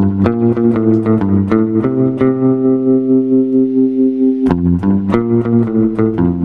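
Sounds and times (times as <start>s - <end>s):
bass six guitar solo with spring reverb and tremolo: 0.0s - 6.4s.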